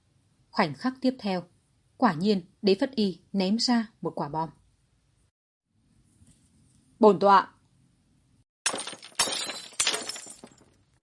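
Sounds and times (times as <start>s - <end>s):
speech: 0.6s - 4.6s, 7.0s - 7.6s
wine cups and chopsticks crashing onto a floor: 8.7s - 11.0s.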